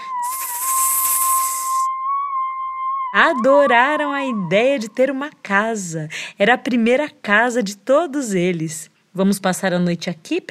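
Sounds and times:
snake hissing loud and breathy: 0.0 - 1.9
steady high whistling tone: 0.0 - 5.2
speech: 3.1 - 10.4.

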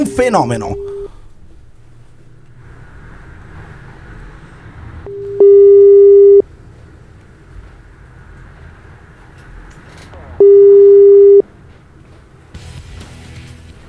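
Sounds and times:
unanswered telephone ringback tone: 0.0 - 1.3, 5.1 - 6.4, 10.4 - 11.4
low hum: 0.0 - 13.8
speech: 0.2 - 0.8.

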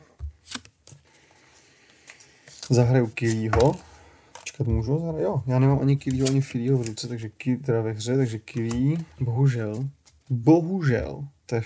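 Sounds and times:
cards being pulled from a deck: 0.2 - 4.6, 5.8 - 10.3
speech: 2.7 - 3.9, 4.6 - 11.6.

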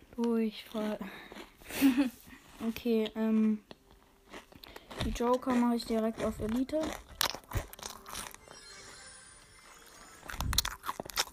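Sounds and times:
speech: 0.2 - 3.8, 5.0 - 7.1
loud crunchy chewing while eating: 0.6 - 2.6, 3.2 - 8.5, 9.8 - 11.3.

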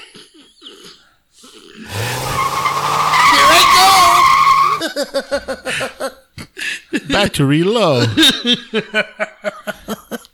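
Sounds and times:
car peeling away with a loud screeching tire skid: 1.9 - 4.8
speech: 5.0 - 5.9, 7.2 - 9.3.

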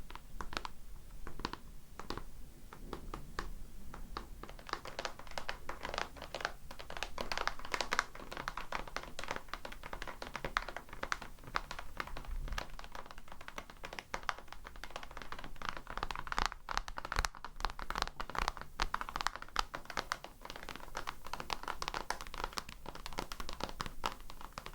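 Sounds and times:
light crinkly clicks: 0.0 - 24.7
quick irregular bright tapping: 0.0 - 24.7.

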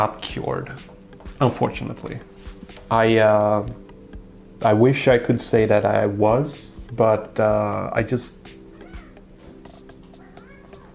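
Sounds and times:
speech: 0.0 - 3.8, 4.6 - 8.6
cat meowing plaintively on a plane: 8.8 - 9.2, 10.2 - 10.9.

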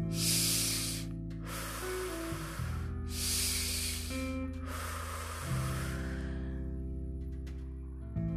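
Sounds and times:
quick forceful breaths during a guided breathing exercise: 0.0 - 6.6
steady low musical drone: 0.0 - 8.3.

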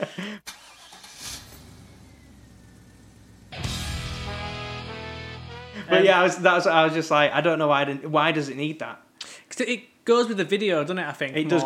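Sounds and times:
speech: 0.2 - 0.5, 5.9 - 9.0, 9.6 - 11.6
car engine turning over idling and revving: 0.5 - 5.1.

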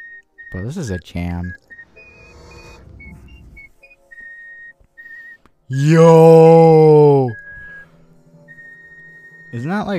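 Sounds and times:
speech: 0.5 - 1.6, 5.7 - 6.9, 9.6 - 9.9
person whistling a short tune: 1.3 - 5.5, 6.1 - 9.6
low rumble: 1.6 - 3.8.

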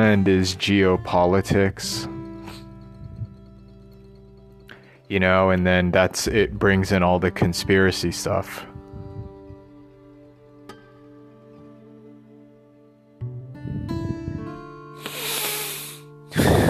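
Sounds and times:
speech: 0.0 - 2.1, 5.1 - 8.8
person sniffing through the nose: 15.0 - 16.6.

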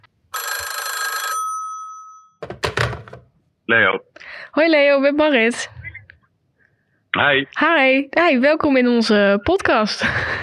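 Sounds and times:
telephone ringing on an outgoing call: 0.3 - 3.1
speech: 3.7 - 5.8, 7.2 - 10.4
laughter: 10.0 - 10.4.

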